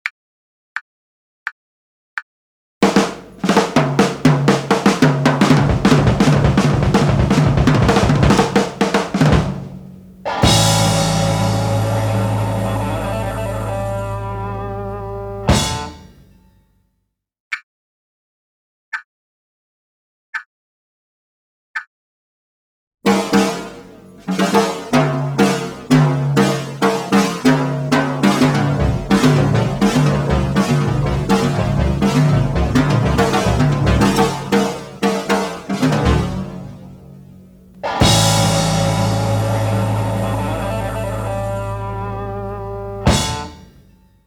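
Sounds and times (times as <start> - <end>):
rock and roll ending drum solo: 2.8 - 16.3, 23.1 - 37.2, 37.8 - 43.8.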